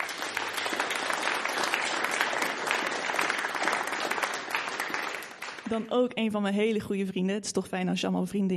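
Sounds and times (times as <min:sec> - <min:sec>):
large audience applauding a band member being introduced: 0:00.0 - 0:05.8
speech: 0:05.7 - 0:08.5.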